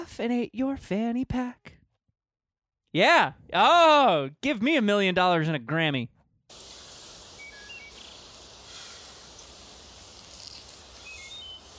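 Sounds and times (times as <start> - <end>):
speech: 0.0 - 1.8, 2.9 - 6.7
steady hiss of outdoor ambience: 6.5 - 11.7
faint high bird chirps: 7.1 - 11.7.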